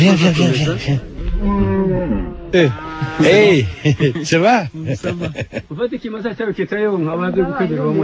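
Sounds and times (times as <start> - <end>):
speech: 0.0 - 8.0
large horned cows mooing: 1.2 - 4.3
laughter: 3.0 - 6.4.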